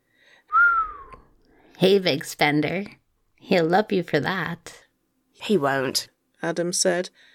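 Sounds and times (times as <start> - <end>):
person giving an impressed surprised whistle: 0.5 - 1.3
speech: 1.8 - 4.8, 5.4 - 7.3.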